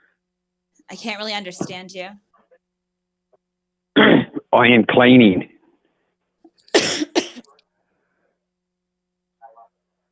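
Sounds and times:
speech: 0.9s - 2.2s, 4.5s - 5.5s
harsh coughs: 3.9s - 4.5s, 6.6s - 7.6s.

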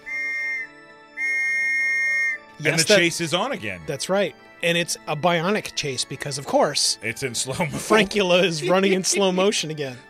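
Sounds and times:
police whistle blasts: 0.0s - 2.6s
laughter: 2.6s - 3.1s, 7.4s - 9.8s
speech: 2.6s - 10.0s.

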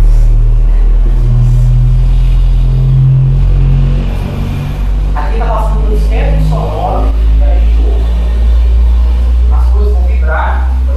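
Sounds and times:
car engine rumbling: 0.0s - 10.9s.

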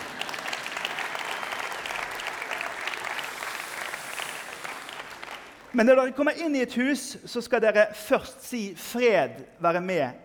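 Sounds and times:
room full of people clapping: 0.0s - 5.8s
speech: 5.7s - 10.2s.

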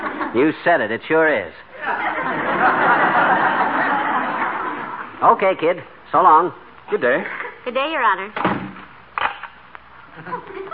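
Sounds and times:
laughter: 0.0s - 0.5s, 1.7s - 5.2s, 10.1s - 10.7s
speech: 0.4s - 3.3s, 5.2s - 8.6s
door slamming shut: 8.4s - 9.4s.

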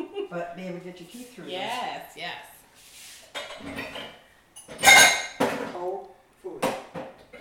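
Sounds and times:
speech: 0.3s - 2.9s, 3.6s - 5.0s, 5.8s - 6.8s
clinks of glass pieces settling: 3.4s - 5.6s
drinking glass smashing: 3.5s - 5.6s.

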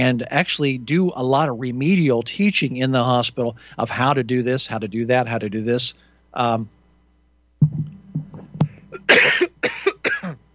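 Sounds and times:
speech: 0.0s - 6.8s
person coughing: 8.6s - 10.4s.

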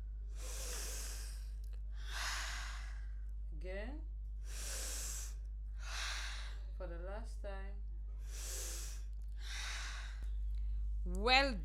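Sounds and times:
deep breathing in and out during a standing breathing exercise: 0.0s - 3.6s, 4.3s - 6.8s, 8.0s - 11.0s
steady low hum: 0.0s - 11.6s
speech: 3.6s - 4.6s, 7.2s - 7.9s, 11.0s - 11.6s.

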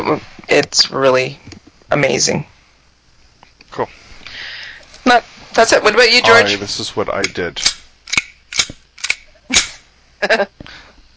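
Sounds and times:
speech: 0.1s - 2.5s, 3.7s - 4.1s, 5.0s - 7.8s, 10.2s - 10.6s
pistol slide being racked on an ISSC M22: 7.6s - 9.8s.

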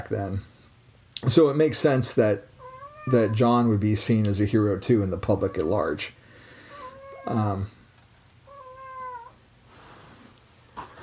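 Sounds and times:
speech: 0.0s - 0.5s, 1.2s - 2.5s, 3.1s - 6.2s, 7.2s - 7.8s
pet cat meowing: 2.6s - 3.4s, 6.7s - 7.4s, 8.5s - 9.4s.

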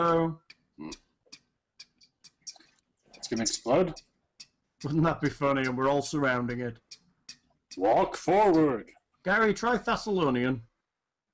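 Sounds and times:
speech: 0.0s - 1.0s, 3.3s - 4.1s, 4.8s - 6.9s, 7.7s - 10.7s
faint mechanical ticking: 0.0s - 8.6s.

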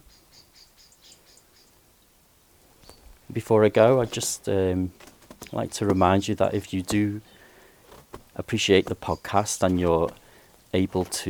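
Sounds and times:
many birds chirping in a garden: 0.0s - 11.2s
speech: 3.4s - 7.3s, 8.4s - 11.2s.

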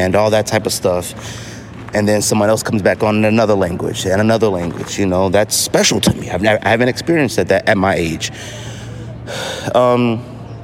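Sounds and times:
speech: 0.0s - 8.7s, 9.3s - 10.3s
heavy breathing while walking: 1.2s - 1.8s, 8.3s - 9.8s.

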